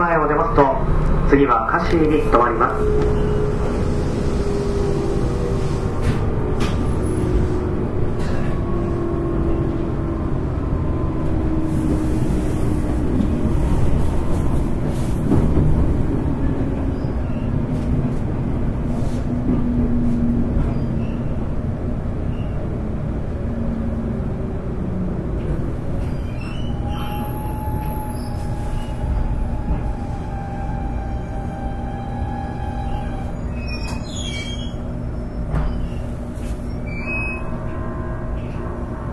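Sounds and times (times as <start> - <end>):
JR 811 series electric train running on a rapid service, heard from inside a car: 0.0 - 39.1
speech: 0.5 - 3.5.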